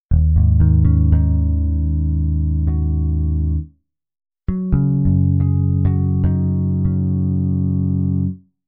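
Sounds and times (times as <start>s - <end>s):
bass harmonics: 0.1s - 3.7s, 4.5s - 8.4s.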